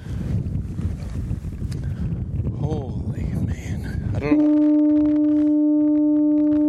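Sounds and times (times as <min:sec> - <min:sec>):
wind blowing through tall grass on a foggy rocky bluff above the Bay of Fundy: 0:00.0 - 0:06.6.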